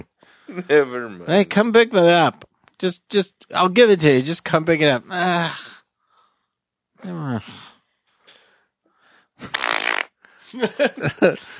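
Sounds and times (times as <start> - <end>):
speech: 0.0 - 5.7, 7.0 - 7.7, 10.5 - 11.5
hissy burst: 9.4 - 10.1
loud rasping fart: 9.4 - 10.2
laughter: 10.4 - 11.5.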